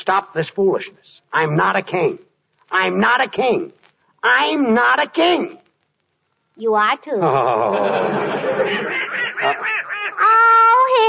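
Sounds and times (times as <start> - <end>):
speech: 0.0 - 5.6, 6.6 - 11.0
laughter: 7.2 - 10.6
duck quacking: 8.7 - 10.7.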